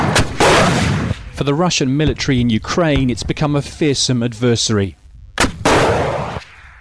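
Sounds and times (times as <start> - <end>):
shoulder-mounted anti-tank missile fired by troops in training, sharp crack: 0.0 - 3.4, 5.4 - 6.7
speech: 1.4 - 5.0.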